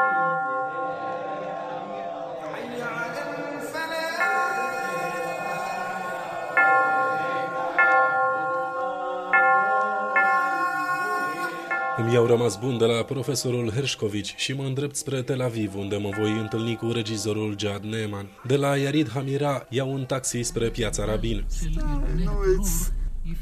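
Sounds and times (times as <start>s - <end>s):
church bells ringing: 0.0s - 1.2s, 3.7s - 14.4s, 15.9s - 18.6s
speech: 12.1s - 23.0s.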